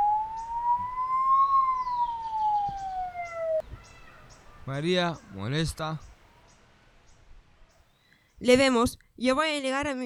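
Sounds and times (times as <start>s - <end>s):
approaching ambulance siren wailing: 0.0s - 3.6s
faint noise: 0.0s - 10.0s
speech: 4.7s - 6.1s, 8.4s - 10.0s.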